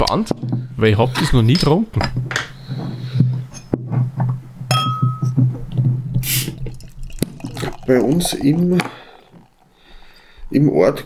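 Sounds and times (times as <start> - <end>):
speech: 0.0 - 2.5, 7.9 - 9.0, 10.5 - 11.0
low steady hum: 4.6 - 9.1
chilled lager bottle clinks and knocks: 4.7 - 5.5
chilled lager bottle opening hiss: 6.2 - 7.3.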